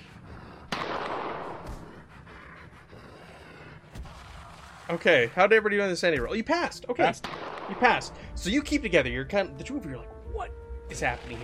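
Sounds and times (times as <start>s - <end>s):
gunshot: 0.7s - 1.9s, 7.2s - 8.0s
speech: 4.9s - 11.4s.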